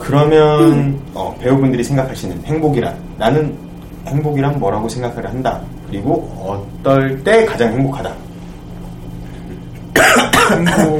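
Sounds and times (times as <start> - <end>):
speech: 0.1 - 8.2, 10.0 - 10.9
person coughing: 0.6 - 1.0, 9.9 - 10.9.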